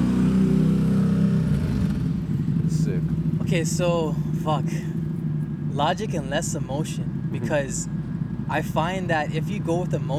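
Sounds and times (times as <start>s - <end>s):
motorcycle engine revving past: 0.0s - 3.8s
speech: 3.5s - 5.0s, 5.8s - 10.1s.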